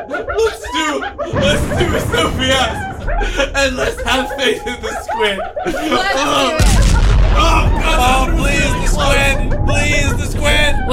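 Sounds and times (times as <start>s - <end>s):
speech: 0.0s - 6.8s, 7.4s - 10.9s
laughter: 0.0s - 10.9s
several people talking loudly: 0.0s - 10.9s
explosion boom in a game: 1.3s - 4.3s, 6.6s - 10.9s
heavy low rumble: 1.3s - 4.4s, 6.6s - 10.9s.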